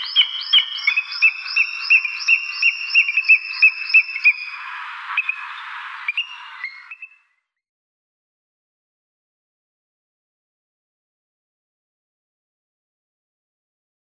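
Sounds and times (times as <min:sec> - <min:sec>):
booted eagle calling: 0:00.0 - 0:07.2.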